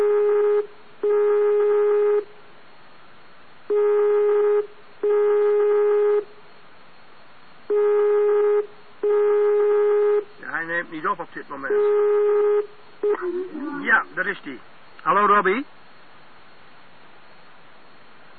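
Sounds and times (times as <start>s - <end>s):
telephone ringback tone while a call waits to be answered: 0.0s - 2.3s, 3.7s - 6.3s, 7.7s - 10.2s, 11.7s - 13.8s
speech: 11.2s - 12.3s, 13.0s - 15.8s.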